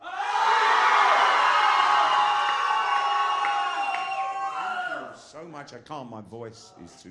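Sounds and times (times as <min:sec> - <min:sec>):
audience screaming on request: 0:00.0 - 0:05.2
speech: 0:05.6 - 0:07.0.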